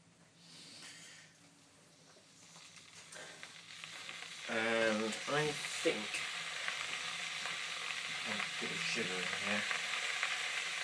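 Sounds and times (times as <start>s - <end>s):
electric kettle hissing while heating water: 2.2s - 10.8s
speech: 9.0s - 9.8s.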